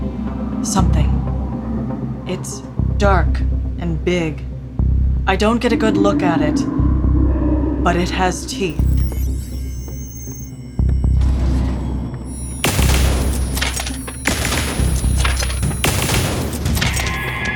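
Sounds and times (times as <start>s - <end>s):
low throbbing hum: 0.0s - 17.4s
speech: 0.6s - 1.3s, 2.3s - 4.5s, 5.3s - 6.8s, 7.8s - 8.8s
weapon firing booming shots at a creature: 12.4s - 17.4s.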